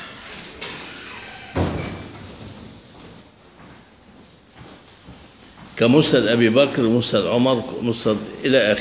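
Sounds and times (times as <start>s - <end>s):
door being shut during a lesson: 1.4s - 2.2s
speech: 5.8s - 8.7s.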